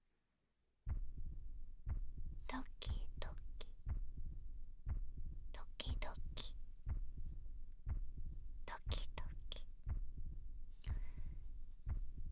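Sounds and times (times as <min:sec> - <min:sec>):
slow heartbeat heard through a chest: 0:00.9 - 0:12.2
soft whispering: 0:02.5 - 0:03.7, 0:05.6 - 0:06.6, 0:08.7 - 0:09.7.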